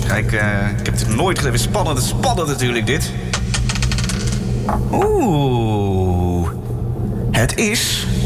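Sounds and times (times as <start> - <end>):
speech: 0.1 - 3.4, 4.7 - 6.3, 7.4 - 8.1
die rolling across a table: 3.4 - 5.1
person letting out a short rising exclamation: 4.9 - 6.5.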